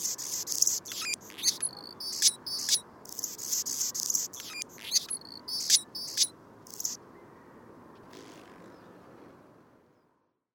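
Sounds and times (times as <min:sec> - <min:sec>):
Anna's hummingbird song: 0:00.0 - 0:02.8, 0:03.5 - 0:07.0.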